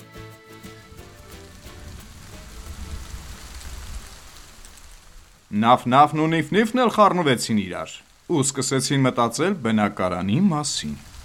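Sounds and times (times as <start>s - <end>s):
tonal music: 0.0s - 3.6s
first rain of the season falling: 0.0s - 11.2s
speech: 5.5s - 11.1s.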